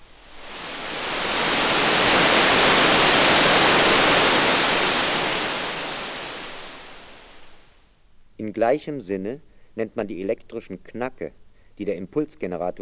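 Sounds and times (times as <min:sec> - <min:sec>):
white noise from a noise generator: 0:00.0 - 0:12.7
speech: 0:08.6 - 0:12.7.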